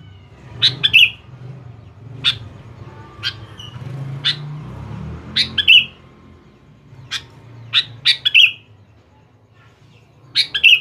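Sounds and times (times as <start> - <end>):
Sooty-headed bulbul chirping and whistling: 0.6 - 4.5, 5.3 - 6.1, 6.9 - 8.8, 10.3 - 10.8.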